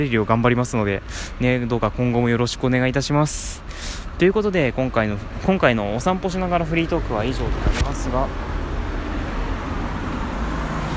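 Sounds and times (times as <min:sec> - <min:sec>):
speech: 0:00.0 - 0:08.5
neighbour's car passing by with engine and tyre rumble: 0:07.5 - 0:10.9.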